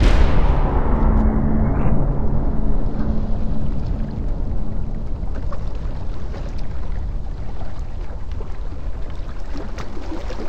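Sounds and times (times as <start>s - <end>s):
cinematic metal impacts in a music sting: 0.0s - 6.9s.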